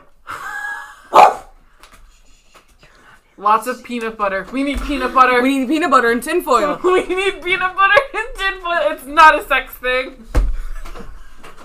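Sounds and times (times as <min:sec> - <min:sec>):
laughter: 0:00.3 - 0:01.1, 0:06.5 - 0:08.6, 0:10.6 - 0:11.6
dog sharp loud bark: 0:01.1 - 0:01.6
speech: 0:03.4 - 0:08.1, 0:08.7 - 0:10.3.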